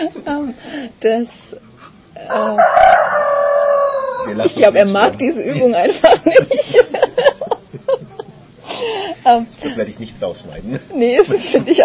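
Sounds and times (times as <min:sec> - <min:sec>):
speech: 0:00.2 - 0:01.4, 0:02.2 - 0:03.0, 0:04.3 - 0:07.4, 0:09.2 - 0:11.8
rooster crowing: 0:02.2 - 0:04.8
laughter: 0:04.4 - 0:09.8, 0:10.7 - 0:11.8.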